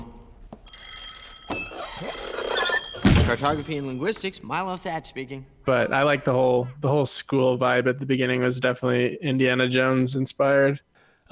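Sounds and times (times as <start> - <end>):
old-fashioned telephone bell ringing in a cluttered classroom: 0.7 - 4.2
speech: 3.3 - 11.3.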